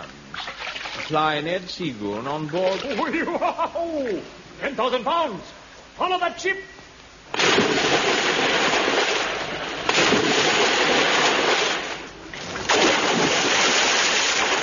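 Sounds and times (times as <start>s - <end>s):
speech: 1.1s - 6.8s
laughter: 2.9s - 4.2s
loud splashes into water, one a person plunging in: 7.4s - 14.6s.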